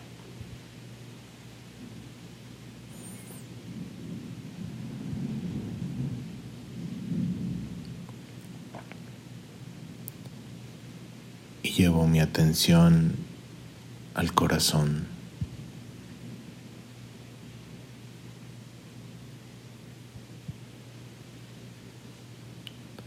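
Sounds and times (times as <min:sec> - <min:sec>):
steady rain hissing: 0:00.0 - 0:23.0
deep rolling rumbles of thunder: 0:03.6 - 0:08.1
speech: 0:11.8 - 0:13.3, 0:14.2 - 0:15.1.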